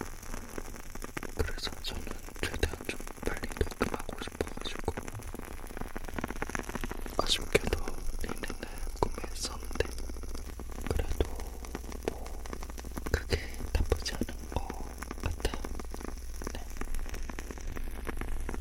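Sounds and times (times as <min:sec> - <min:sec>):
wooden candle wick crackling: 0:00.0 - 0:18.5
low hum: 0:03.9 - 0:18.5.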